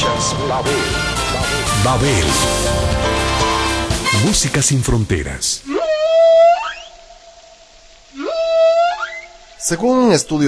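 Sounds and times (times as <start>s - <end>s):
speech: 0.2s - 1.1s, 1.9s - 3.4s, 4.1s - 5.7s, 9.7s - 10.4s
whale song during mating ritual: 5.7s - 9.5s.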